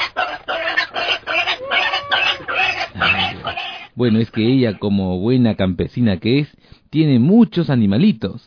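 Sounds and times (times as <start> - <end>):
pig grunting and oinking: 0.0 - 4.8
speech: 4.0 - 8.4.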